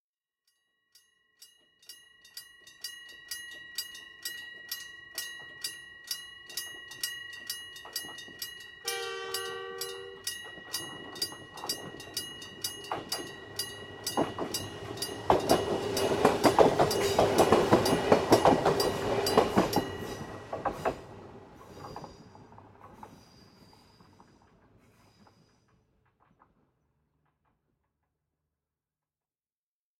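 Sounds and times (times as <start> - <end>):
railroad crossing signal: 1.8 - 22.5.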